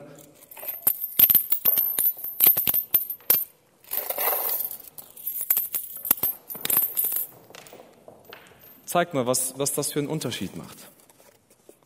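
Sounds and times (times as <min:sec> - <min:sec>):
coins dropping from a person's hands: 0:00.4 - 0:07.8
speech: 0:08.9 - 0:10.9.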